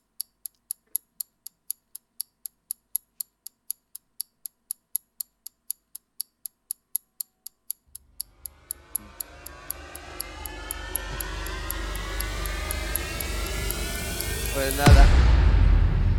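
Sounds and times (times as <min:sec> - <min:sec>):
regular ticking: 0:00.0 - 0:15.2
deep rumbling blast: 0:08.2 - 0:16.1
jet airplane engines roaring at an airport: 0:08.3 - 0:15.1.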